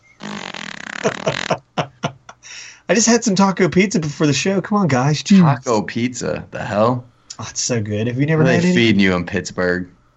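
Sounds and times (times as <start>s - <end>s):
short sharp squeaks of furniture: 0.0s - 1.7s
furniture creaking under someone sitting: 0.0s - 1.8s
speech: 1.0s - 1.7s, 2.9s - 10.0s
laughter: 1.0s - 3.1s, 8.4s - 9.2s.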